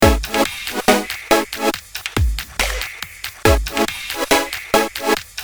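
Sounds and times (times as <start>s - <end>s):
synth lfo modulation: 0.0s - 1.7s, 3.5s - 5.2s.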